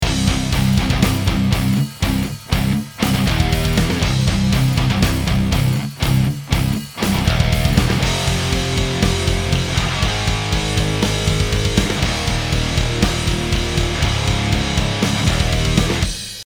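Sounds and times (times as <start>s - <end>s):
amplifier: 0.0s - 16.2s.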